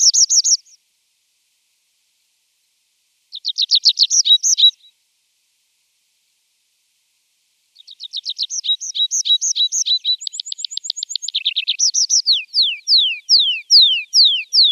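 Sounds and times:
tree pipit singing looping notes, trills, rattle and downward slurs: 0.0 - 0.8, 3.3 - 4.9, 7.8 - 14.7.

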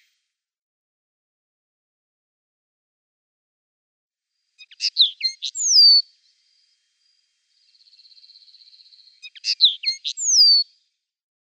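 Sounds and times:
Eurasian linnet song: 4.6 - 6.8, 7.4 - 10.8.

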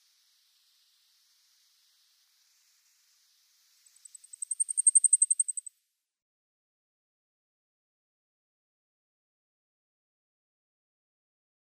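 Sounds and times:
Blackpoll Warbler singing high sibilant notes: 0.0 - 5.7.

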